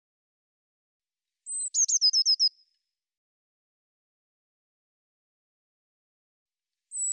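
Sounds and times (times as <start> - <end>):
Eurasian blue tit song: 1.4 - 2.7, 6.9 - 7.1.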